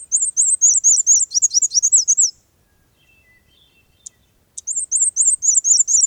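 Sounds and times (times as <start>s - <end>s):
black-and-white warbler singing: 0.0s - 6.0s.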